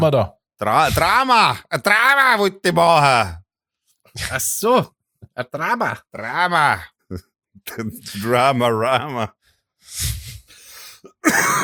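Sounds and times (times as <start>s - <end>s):
speech: 0.0s - 3.4s, 4.2s - 10.3s, 11.2s - 11.6s
sick person coughing: 11.1s - 11.6s.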